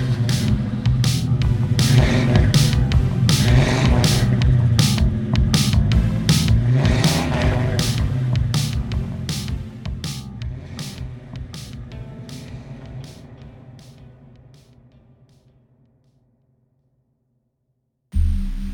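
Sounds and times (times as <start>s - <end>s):
muscle car engine revving: 0.0s - 11.8s.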